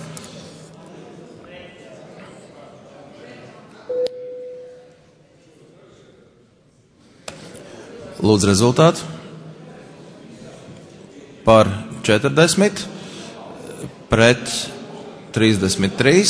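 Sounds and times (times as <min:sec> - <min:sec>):
electronic voting bell tone in a parliament chamber: 0:03.9 - 0:05.0
speech: 0:08.2 - 0:09.2, 0:11.5 - 0:13.0, 0:14.2 - 0:14.8, 0:15.4 - 0:16.2.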